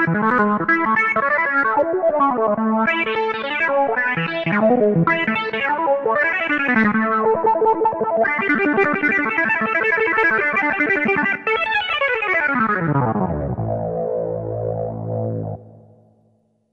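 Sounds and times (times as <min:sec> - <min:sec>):
Korg Polysix analog synthesizer: 0:00.1 - 0:16.4.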